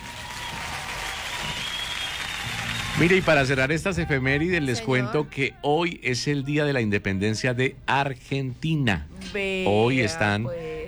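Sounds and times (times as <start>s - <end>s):
crowd applauding: 0.0s - 4.6s
speech: 3.0s - 10.7s.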